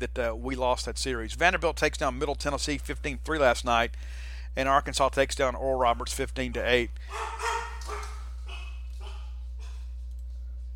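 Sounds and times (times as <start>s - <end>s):
speech: 0.0s - 8.0s
low steady hum: 0.0s - 10.7s
pack of dogs at a home barking sharp yaps: 7.1s - 10.0s.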